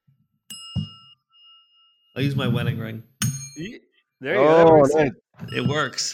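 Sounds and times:
small bell struck: 0.5s - 2.2s, 3.2s - 3.8s
speech: 2.2s - 6.1s.

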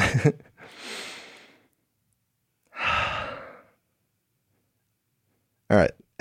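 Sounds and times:
speech: 0.2s - 0.5s, 5.7s - 6.1s
full audible exhale: 0.6s - 1.7s, 2.7s - 3.8s
long drawn deep inhale: 0.6s - 1.7s, 2.7s - 3.8s.

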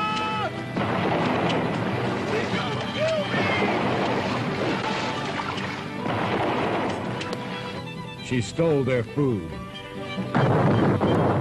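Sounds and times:
boat being smashed apart by a woman: 0.8s - 7.8s
speech: 8.3s - 11.3s.

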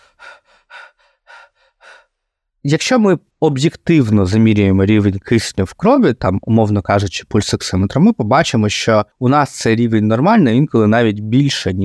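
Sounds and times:
rapid shallow breathing of panic disorder: 0.0s - 2.4s
speech: 2.6s - 11.8s.

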